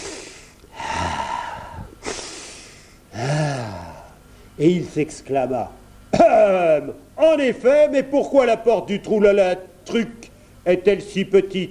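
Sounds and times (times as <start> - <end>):
person imitating a giant sniffing: 0.0 - 4.2
speech: 4.6 - 5.8, 6.4 - 11.6.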